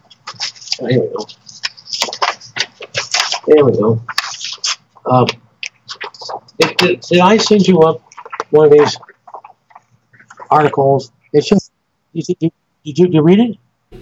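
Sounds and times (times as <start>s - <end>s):
papers rustling as someone leafs through a stack: 0.0s - 10.6s
speech: 0.8s - 1.4s, 3.5s - 4.2s, 5.1s - 5.4s, 6.6s - 9.1s, 10.5s - 11.6s, 12.2s - 13.9s.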